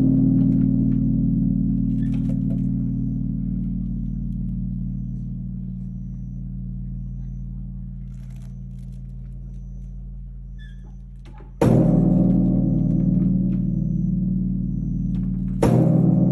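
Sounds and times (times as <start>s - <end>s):
temple bell at night: 0.0s - 10.6s, 11.6s - 16.3s.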